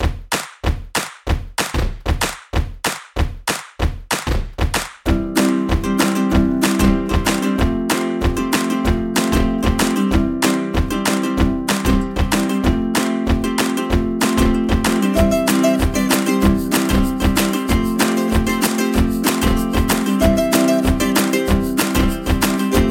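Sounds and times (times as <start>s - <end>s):
beats: 0.0s - 22.8s.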